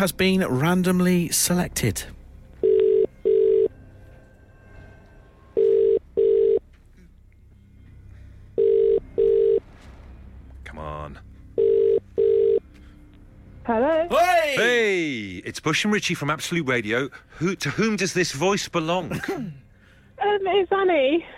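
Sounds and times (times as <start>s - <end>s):
speech: 0.0s - 2.2s, 13.7s - 19.6s, 20.2s - 21.3s
telephone ringing tone over the line: 2.6s - 3.8s, 5.6s - 6.6s, 8.6s - 9.6s, 11.6s - 12.6s.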